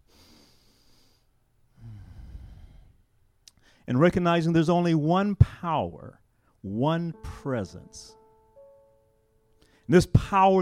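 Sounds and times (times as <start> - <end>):
group of people taking a deep collective breath: 0.0 - 3.9, 9.6 - 9.9
speech: 3.9 - 8.2, 9.9 - 10.6.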